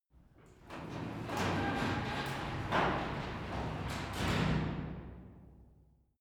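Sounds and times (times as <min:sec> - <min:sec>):
garage door closing: 0:00.3 - 0:05.2.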